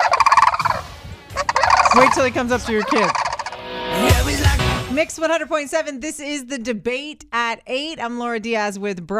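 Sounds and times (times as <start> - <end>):
Sandhill Crane giving a loud rolling, rattling call: 0.0 - 3.6
speech: 2.0 - 3.2, 5.0 - 9.1.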